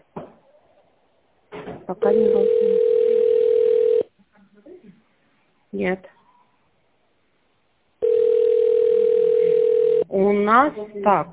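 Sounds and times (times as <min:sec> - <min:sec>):
speech: 0:01.9 - 0:03.0, 0:05.7 - 0:06.2, 0:10.2 - 0:11.3
telephone dial tone while placing a call: 0:02.3 - 0:04.1, 0:08.0 - 0:10.0.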